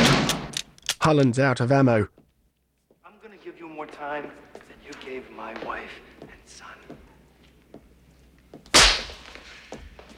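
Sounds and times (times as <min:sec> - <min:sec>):
speech: 0:01.0 - 0:02.2, 0:03.8 - 0:07.0
faint knocks and shuffles: 0:02.1 - 0:08.7
hard slap during a fight: 0:08.7 - 0:09.4.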